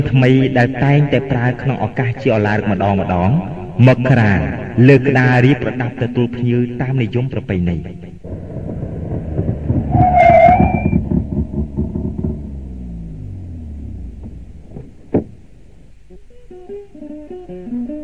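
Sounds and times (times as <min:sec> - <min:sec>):
speech: 0:00.0 - 0:08.2
car engine rumbling as a vehicle drives up and stops in front of a house: 0:08.2 - 0:16.6.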